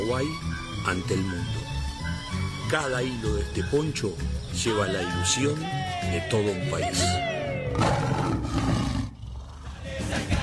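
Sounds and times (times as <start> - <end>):
speech: 0.1 - 1.8, 2.7 - 8.8
big cat roaring: 7.6 - 9.9.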